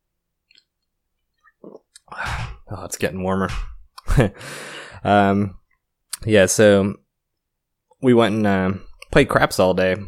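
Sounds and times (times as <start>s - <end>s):
person sipping beer: 1.4s - 2.6s
short soft gulp: 1.4s - 2.6s
speech: 1.6s - 5.6s, 6.2s - 7.0s, 8.0s - 10.0s.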